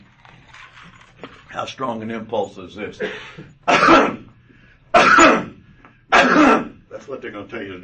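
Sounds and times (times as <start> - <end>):
speech: 1.6 - 4.2, 7.1 - 7.8
person coughing hard with a raspy throat-clearing quality: 3.0 - 4.3, 4.9 - 6.8.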